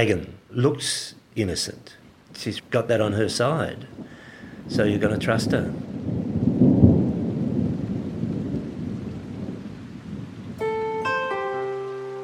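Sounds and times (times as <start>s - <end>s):
speech: 0.0s - 5.9s
steady heavy rain: 0.0s - 12.2s
deep roll of thunder: 3.3s - 11.4s
sustained musical chord tones: 10.6s - 12.2s.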